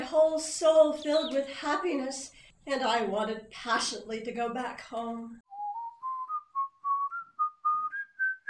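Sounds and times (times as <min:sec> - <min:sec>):
speech: 0:00.1 - 0:05.4
person whistling a tune: 0:05.5 - 0:08.4.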